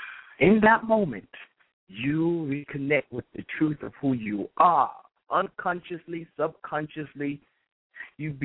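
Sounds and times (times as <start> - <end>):
speech: 0.4 - 8.4
deep breath: 7.5 - 8.2.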